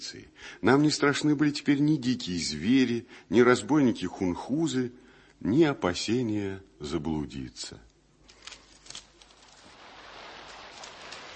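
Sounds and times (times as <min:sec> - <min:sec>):
speech: 0:00.0 - 0:07.9
steady rain falling: 0:08.3 - 0:11.3.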